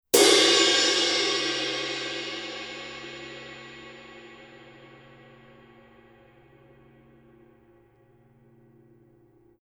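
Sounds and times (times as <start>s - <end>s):
Paiste Color Sound 900 Blue ride cymbal: 0.2s - 7.8s.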